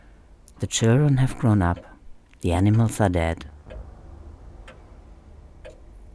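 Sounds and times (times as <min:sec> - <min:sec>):
low steady rumble: 0:00.0 - 0:06.1
speech: 0:00.6 - 0:03.5
clock ticking: 0:01.1 - 0:03.9, 0:04.6 - 0:06.1.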